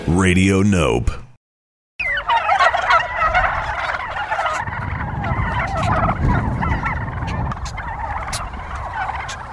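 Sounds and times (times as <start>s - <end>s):
speech: 0.2s - 1.3s
Kelly Bronze turkeys gobbling: 2.0s - 9.5s.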